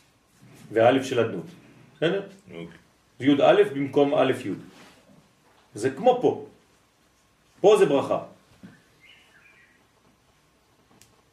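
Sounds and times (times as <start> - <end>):
quiet hiss: 0.0 - 11.3
speech: 0.7 - 4.7, 5.8 - 6.5, 7.6 - 8.3
soft bird chirps: 8.6 - 9.9.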